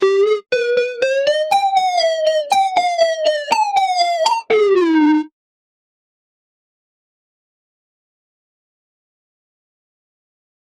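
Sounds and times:
uplifting beat with drums: 0:00.0 - 0:05.1.

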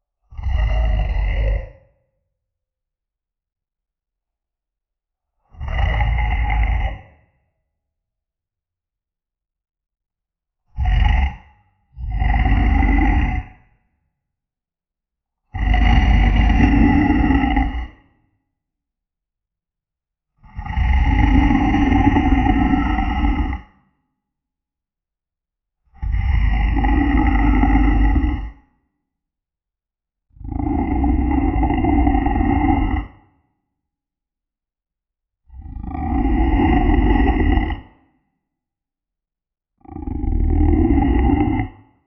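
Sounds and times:
swamp monster growl: 0:00.3 - 0:02.0, 0:05.5 - 0:07.4, 0:10.8 - 0:13.7, 0:15.5 - 0:18.2, 0:20.4 - 0:23.8, 0:26.0 - 0:28.8, 0:30.4 - 0:33.5, 0:35.5 - 0:38.2, 0:39.8 - 0:42.0.

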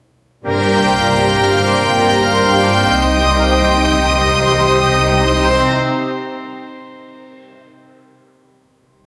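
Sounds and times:
orchestra tutti in C: 0:00.5 - 0:07.9.

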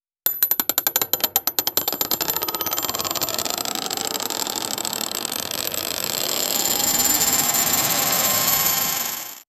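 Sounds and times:
cinematic game show spinning wheel: 0:00.6 - 0:09.4.

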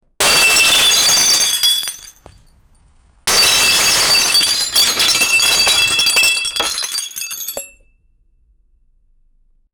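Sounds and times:
loud crash of glass shattering on impact: 0:00.2 - 0:02.6, 0:03.3 - 0:07.8.

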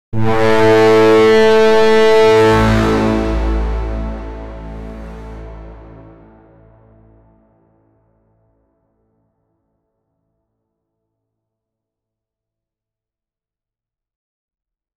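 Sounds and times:
Roman Empire war horn: 0:00.2 - 0:07.4.

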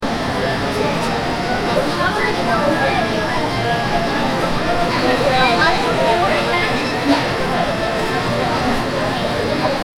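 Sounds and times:
retail ambience: 0:00.0 - 0:09.8.

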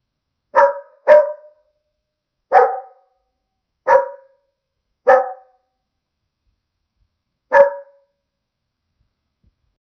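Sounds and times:
dog barking: 0:00.6 - 0:01.7, 0:02.5 - 0:03.2, 0:03.9 - 0:04.5, 0:05.1 - 0:05.6, 0:07.5 - 0:08.1.

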